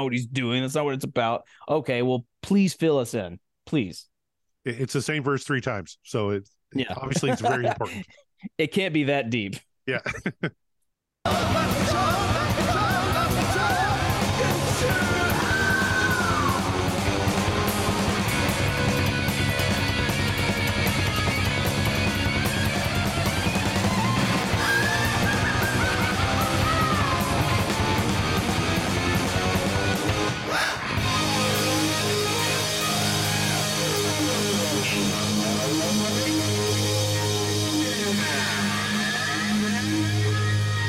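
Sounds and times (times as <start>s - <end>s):
speech: 0.0s - 10.6s, 11.2s - 12.2s
laughter: 6.8s - 8.2s, 9.9s - 10.6s, 11.3s - 14.0s
shouted vocals: 11.3s - 17.1s, 24.5s - 28.1s
loud distorted rock band playing: 11.3s - 40.8s.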